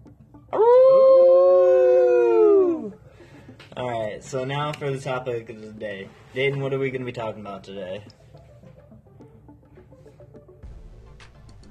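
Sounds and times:
wolf howling: 0.5 - 3.0
speech: 4.3 - 8.2.

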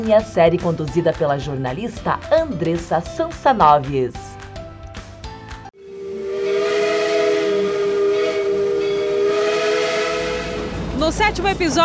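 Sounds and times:
speech: 0.0 - 4.4, 11.0 - 11.8
steam locomotive whistle: 5.8 - 11.0.

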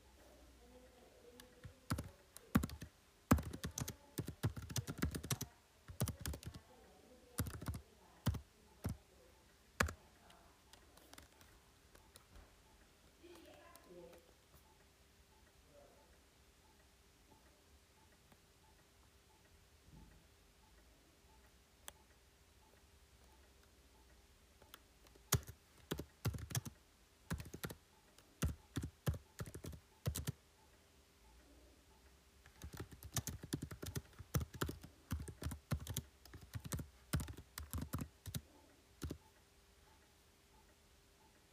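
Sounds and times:
keyboard typing: 1.2 - 9.1, 9.8 - 15.4, 21.3 - 31.4, 32.4 - 40.0.

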